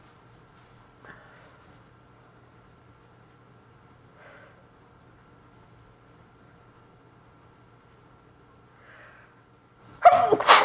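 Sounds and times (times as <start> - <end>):
sneeze: 10.0 - 10.6.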